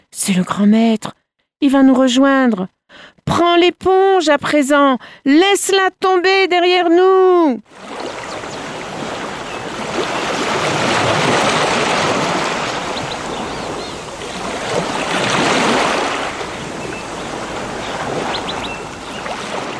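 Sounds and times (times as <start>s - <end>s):
speech: 0.1s - 8.4s
sea waves rolling in and spreading out: 7.7s - 19.7s
wind buffeting: 7.7s - 19.7s.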